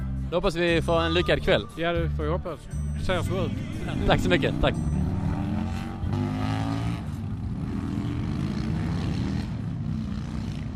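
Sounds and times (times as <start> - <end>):
speech: 0.3 - 5.0
engine rumble at an outdoor car meet: 2.8 - 10.7.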